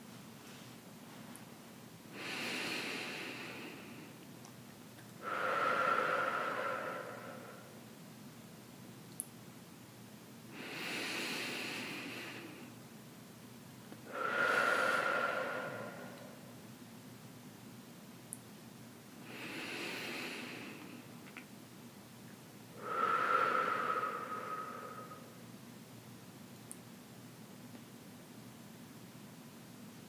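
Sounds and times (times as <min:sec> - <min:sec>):
slow deep breathing during a guided relaxation exercise: 0:02.1 - 0:04.2, 0:05.2 - 0:07.8, 0:10.5 - 0:12.8, 0:14.0 - 0:16.6, 0:19.2 - 0:21.2, 0:22.8 - 0:25.4.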